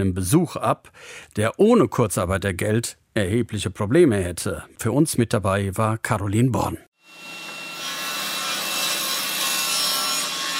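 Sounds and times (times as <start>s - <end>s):
speech: 0.0s - 7.4s
table saw cutting a long wooden board: 7.0s - 10.5s.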